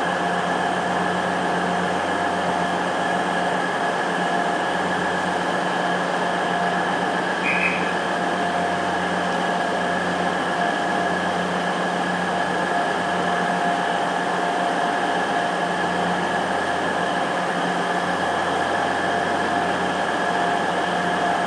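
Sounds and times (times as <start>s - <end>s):
loud passing train roar with humming mechanical tones: 0.0s - 21.4s.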